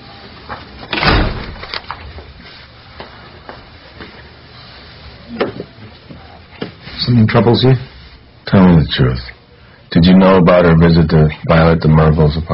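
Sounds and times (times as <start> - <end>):
door shutting with a heavy thud: 0.9 - 2.1
speech: 7.1 - 7.9, 8.9 - 9.3, 10.0 - 12.5.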